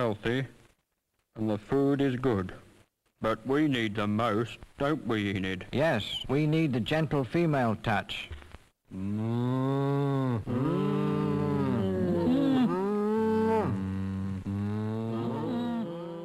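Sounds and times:
speech: 0.0 - 0.6, 1.4 - 11.4
several cows mooing: 9.0 - 16.2.

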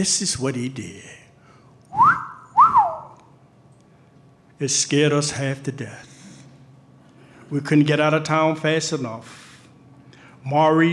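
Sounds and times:
speech: 0.0 - 1.2, 4.6 - 6.1, 7.5 - 9.4, 10.4 - 10.9
person wolf whistling at a woman outside a store: 1.9 - 3.2.

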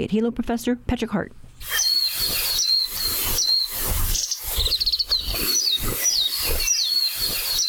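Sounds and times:
speech: 0.0 - 1.8
Japanese white-eye singing warbling song: 1.6 - 7.6.

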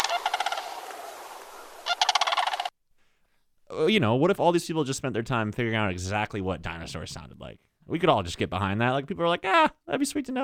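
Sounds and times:
Sandhill Crane calling in harsh rolling rattled pulses: 0.0 - 2.7
speech: 3.8 - 10.4.

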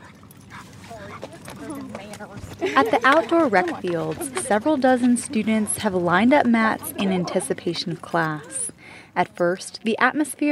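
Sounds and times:
murmur of university students talking on outdoor recreation fields: 0.0 - 10.5
puppies yipping and barking at a puppy Pilates class on outdoor recreation fields: 0.1 - 8.8
laughter: 1.6 - 8.8
speech: 2.2 - 8.6, 9.2 - 10.5.

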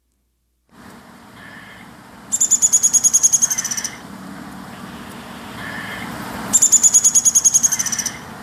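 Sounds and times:
steady low outdoor hum: 0.0 - 8.4
downy woodpecker scolding warning call: 1.4 - 4.0, 5.0 - 8.3.

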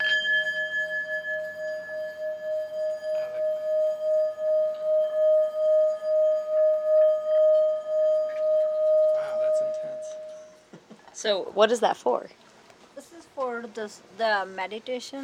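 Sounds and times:
singing bowls played in a meditation goods shop: 0.0 - 10.6
speech: 11.2 - 12.4, 13.6 - 15.2.

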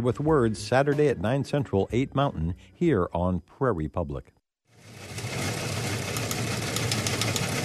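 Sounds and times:
speech: 0.0 - 5.2
wire-service teletype machine clattering: 5.3 - 7.6.

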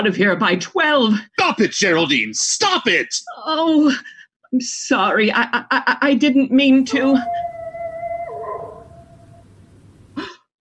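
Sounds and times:
speech: 0.0 - 7.5
dog howling: 6.8 - 9.6
dog barking: 6.9 - 9.4.

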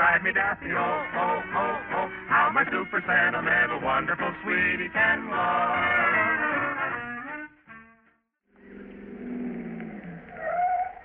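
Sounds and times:
music: 0.0 - 8.4
speech: 0.2 - 6.4.

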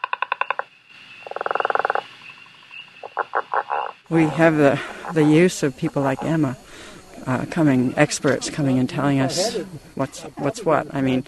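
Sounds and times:
another frog trilling: 0.0 - 6.5
gray tree frog loud pulsed trill call: 0.0 - 11.2
speech: 4.1 - 11.2.

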